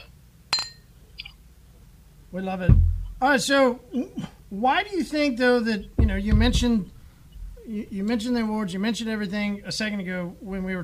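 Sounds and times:
low hum: 0.0s - 10.8s
glasses clinking in a toast: 0.5s - 0.9s
speech: 2.3s - 7.0s, 7.7s - 10.8s.

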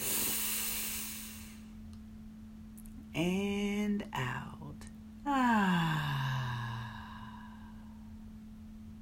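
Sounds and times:
deep breath in during a guided breathing exercise: 0.0s - 1.7s, 6.0s - 8.1s
faint low hum: 0.0s - 8.9s
speech: 3.2s - 4.5s.

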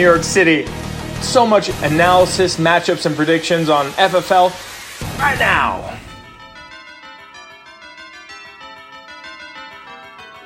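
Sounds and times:
speech: 0.0s - 5.9s
bells pealing: 5.2s - 10.4s.

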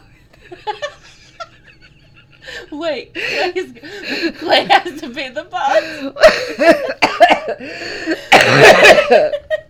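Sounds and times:
speech: 2.8s - 6.9s, 8.4s - 9.4s
person coughing harshly: 6.3s - 9.4s.

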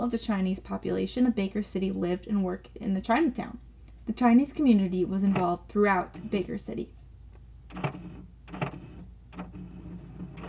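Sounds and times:
speech: 0.0s - 7.0s
printer low whirring hum: 0.0s - 10.4s
printer running noisily with rhythmic mechanical clunks: 7.7s - 10.4s.

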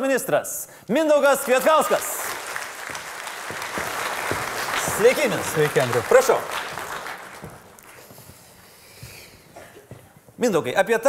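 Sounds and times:
speech: 0.0s - 2.3s, 5.0s - 6.6s, 10.4s - 11.0s
audience applauding to welcome a new guest: 1.2s - 8.4s.

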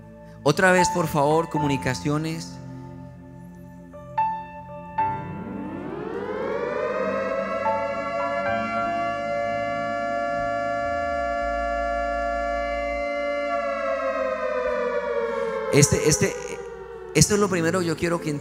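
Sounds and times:
speech: 0.4s - 2.6s, 15.8s - 16.4s, 17.2s - 18.3s
alert siren wailing: 5.0s - 18.3s.

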